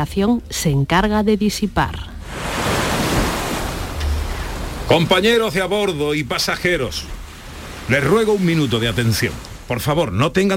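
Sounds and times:
speech: 0.0 - 2.1, 4.9 - 7.2, 7.9 - 10.5
gusty wind: 2.2 - 9.8
rough sea surf crashing: 2.2 - 10.1.

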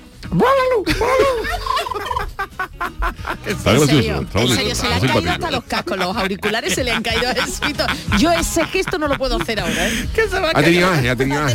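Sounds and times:
speech: 0.3 - 11.5
laughter: 0.8 - 11.5
turkey gobbling: 1.5 - 2.5.

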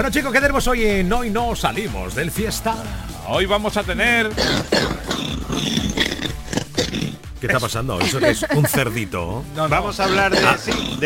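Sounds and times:
speech: 0.0 - 6.0, 7.4 - 11.0
harsh raspy barking cough: 4.4 - 7.2, 8.0 - 9.0, 10.0 - 11.0
laughter: 8.0 - 9.2.

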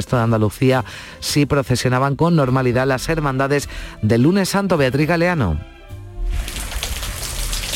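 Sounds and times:
speech: 0.0 - 5.8
heavy rain spattering on hard surfaces in a city street: 6.3 - 7.7.

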